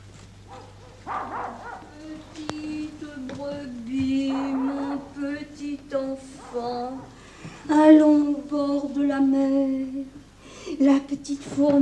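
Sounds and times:
steady low hum: 0:00.0 - 0:11.8
excited dogs barking: 0:00.4 - 0:02.3, 0:04.0 - 0:07.2.

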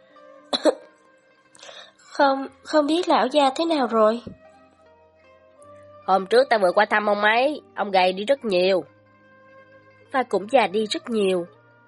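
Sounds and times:
person coughing: 0:00.6 - 0:00.9
faint breathy rasp: 0:01.5 - 0:02.1
speech: 0:02.2 - 0:04.4, 0:06.1 - 0:08.9, 0:10.1 - 0:11.6.

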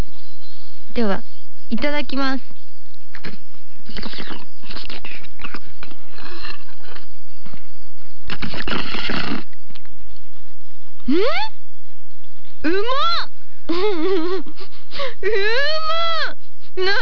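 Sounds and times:
speech: 0:01.0 - 0:02.6, 0:03.2 - 0:05.6, 0:08.4 - 0:09.4, 0:11.1 - 0:11.5, 0:12.7 - 0:17.0
soft tofu slurped up through a drinking straw: 0:08.3 - 0:09.6.

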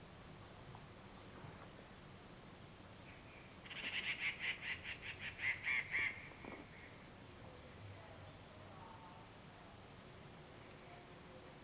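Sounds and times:
grey treepie Dendrocitta formosae giving harsh notes in Puli, Nantou County, Taiwan: 0:03.6 - 0:06.3.

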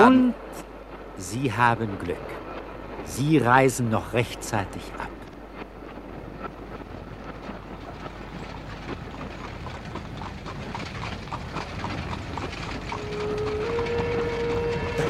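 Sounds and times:
speech: 0:00.0 - 0:00.4, 0:01.2 - 0:02.4, 0:03.0 - 0:05.2
horses' hooves clip-clopping while pulling a carriage: 0:00.0 - 0:15.0
carriage rumbling: 0:04.9 - 0:15.0.

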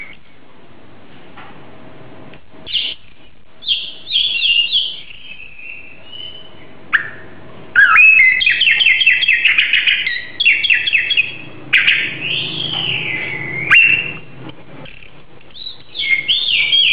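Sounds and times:
Oriental magpie-robin singing: 0:02.7 - 0:14.4, 0:15.5 - 0:16.9.

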